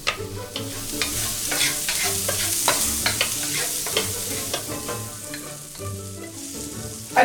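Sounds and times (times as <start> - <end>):
scraping and clicking from stirring: 0.0 - 5.6
shallots and garlic frying in a pan on medium-high heat: 0.0 - 7.2.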